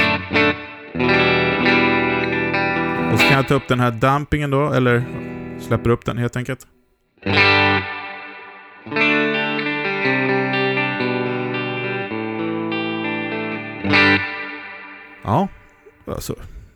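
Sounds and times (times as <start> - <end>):
electric guitar through a plate reverb strumming chords: 0.0 - 4.0, 7.2 - 15.0
speech: 3.4 - 8.0, 8.8 - 9.2, 15.2 - 16.5.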